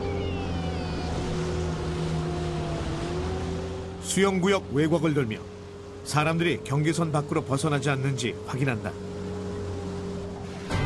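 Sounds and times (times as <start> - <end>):
rescue motorboat engine droning on patrol: 0.0 - 10.8
water rushing beneath a motorboat: 0.0 - 10.8
speech: 4.1 - 5.5, 6.1 - 9.1.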